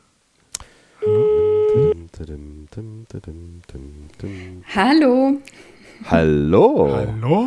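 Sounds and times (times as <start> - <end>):
telephone ringback tone during outgoing call: 1.0 - 2.0
speech: 2.2 - 7.4.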